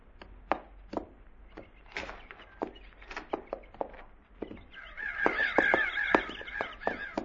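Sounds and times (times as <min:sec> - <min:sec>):
sharp irregular tapping knocks: 0:00.2 - 0:07.2
crows cawing and squawking: 0:01.6 - 0:07.2.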